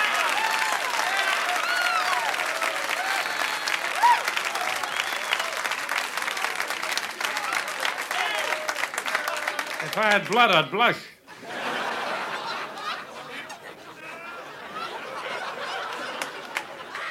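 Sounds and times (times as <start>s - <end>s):
scattered audience cheers: 0.0s - 10.4s, 14.4s - 17.0s
large audience clapping: 0.0s - 11.0s, 14.8s - 17.0s
audience whistles: 3.2s - 5.6s
laughter: 9.0s - 10.6s, 11.3s - 17.0s
speech: 10.0s - 11.1s.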